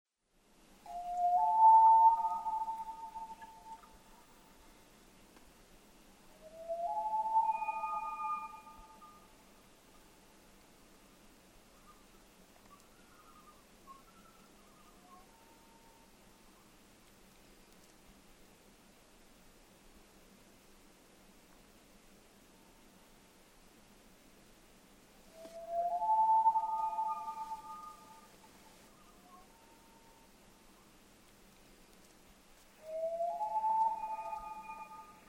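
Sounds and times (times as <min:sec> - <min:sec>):
Common Loon Gavia immer: 0:00.9 - 0:04.3, 0:06.4 - 0:09.2, 0:25.4 - 0:30.1, 0:32.8 - 0:35.2.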